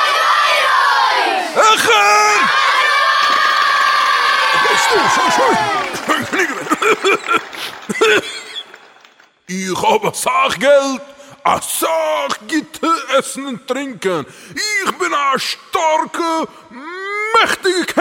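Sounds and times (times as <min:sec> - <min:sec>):
audience shouting together in a loud chant and scattered yells: 0:00.0 - 0:06.1
laughter: 0:04.4 - 0:08.9
speech: 0:07.3 - 0:08.4, 0:09.5 - 0:17.9.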